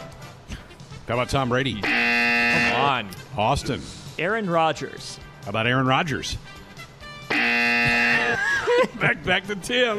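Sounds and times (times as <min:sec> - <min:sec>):
speech: 0:01.1 - 0:06.5, 0:08.9 - 0:09.9
quiz game buzzer: 0:01.8 - 0:03.0, 0:07.3 - 0:08.4
laughter: 0:08.1 - 0:09.9.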